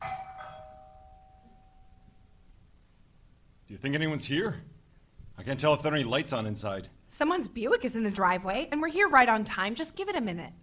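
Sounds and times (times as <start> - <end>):
ordinary doorbell ringing: 0.0 - 2.0
speech: 3.7 - 4.7, 5.4 - 10.6.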